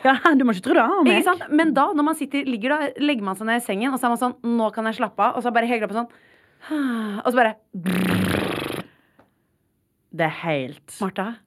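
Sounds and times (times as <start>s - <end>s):
speech: 0.0s - 8.4s, 10.1s - 11.4s
person imitating a fart with a buzzy raspberry: 7.8s - 8.9s.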